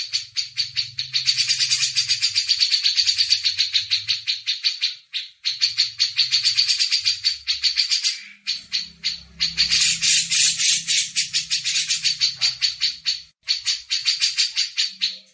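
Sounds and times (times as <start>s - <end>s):
Grey-cheeked bulbul chattering: 0.0s - 15.3s.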